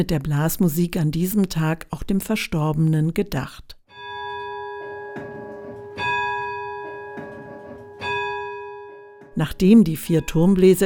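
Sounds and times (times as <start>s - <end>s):
speech: 0.0s - 3.8s, 9.4s - 10.8s
town hall tower bells ringing: 3.9s - 10.8s.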